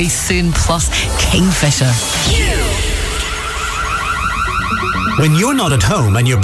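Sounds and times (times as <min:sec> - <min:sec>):
speech: 0:00.0 - 0:03.0, 0:04.8 - 0:06.4
burglar alarm wailing with a rapid electronic warble: 0:02.3 - 0:06.4.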